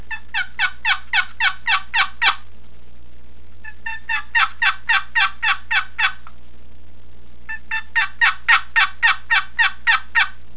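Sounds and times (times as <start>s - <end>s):
camo walnut turkey yelps: 0.1s - 2.4s, 3.6s - 6.2s, 7.5s - 10.4s.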